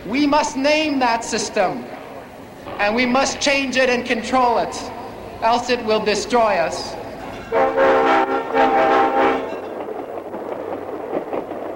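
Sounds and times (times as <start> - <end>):
speech: 0.0 - 2.0, 2.7 - 7.8
rumble of a passing train: 0.0 - 11.7
train horn blasts with harmonic tones: 7.5 - 9.8.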